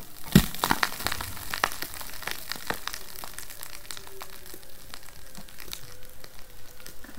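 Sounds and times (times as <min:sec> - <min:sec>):
Arctic sea ice plates cracking and grinding: 0:00.0 - 0:07.1.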